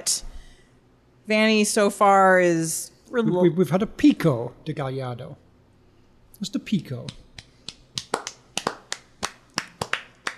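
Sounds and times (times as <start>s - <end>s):
speech: 0.0s - 0.3s, 1.3s - 5.4s, 6.4s - 7.2s
sparse scattered clapping: 7.0s - 10.3s.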